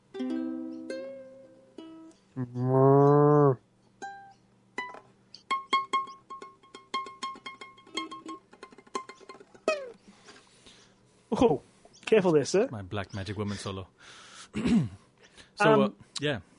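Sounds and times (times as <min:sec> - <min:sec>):
speech: 0:02.4 - 0:03.0, 0:11.4 - 0:15.0, 0:15.6 - 0:16.5
choppy vocal bursts: 0:02.4 - 0:03.6
people mooing like cows in a playful sung jingle: 0:02.4 - 0:03.6.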